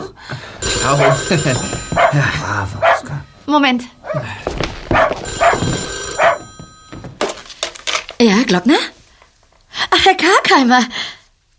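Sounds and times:
telephone bell ringing: 0:00.6 - 0:02.8, 0:05.1 - 0:07.6
speech: 0:00.8 - 0:02.9, 0:03.5 - 0:04.5, 0:08.2 - 0:08.9, 0:10.1 - 0:11.0
dog barking: 0:02.0 - 0:02.2, 0:02.8 - 0:03.1, 0:04.0 - 0:04.2, 0:04.9 - 0:06.4.

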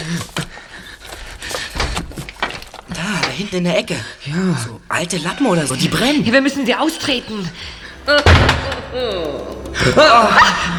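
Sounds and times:
speech: 0:03.4 - 0:10.7
heavy door slamming shut: 0:07.7 - 0:10.1.

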